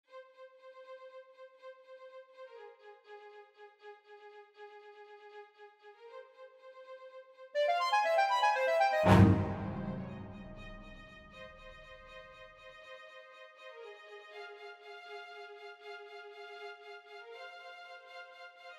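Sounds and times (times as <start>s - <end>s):
fugato music: 7.6s - 11.6s.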